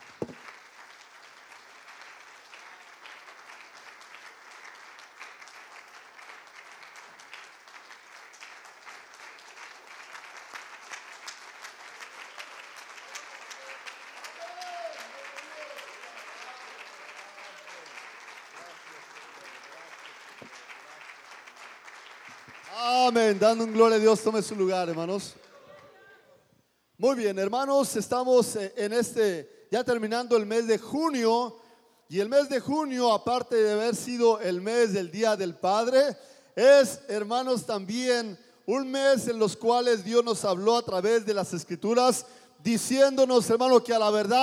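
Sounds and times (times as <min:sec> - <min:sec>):
church audience clapping hands: 0:00.0 - 0:25.8
speech: 0:23.1 - 0:25.4, 0:27.0 - 0:44.4.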